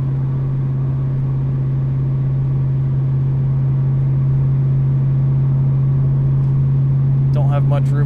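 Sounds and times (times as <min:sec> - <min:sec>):
car engine holding steady at 2,000 rpm with the windows up: 0:00.0 - 0:08.0
speech: 0:07.7 - 0:08.0.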